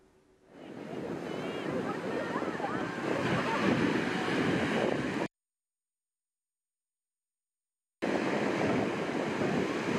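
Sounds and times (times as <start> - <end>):
wind noise: 0.5 - 5.3, 8.0 - 9.9
ocean waves crashing on Seabright State Beach in Santa Cruz California: 0.6 - 5.3, 8.0 - 9.9.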